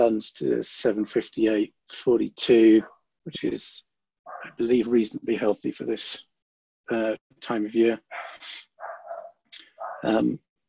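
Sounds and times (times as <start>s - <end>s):
speech: 0.0s - 6.3s, 6.9s - 8.7s, 10.0s - 10.5s
dog barking: 4.3s - 4.6s, 8.1s - 10.2s.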